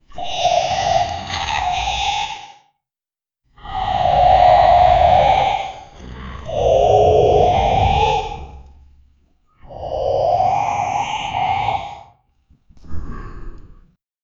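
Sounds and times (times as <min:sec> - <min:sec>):
horror animal voice: 0:00.0 - 0:02.7, 0:03.6 - 0:08.8, 0:09.6 - 0:12.2.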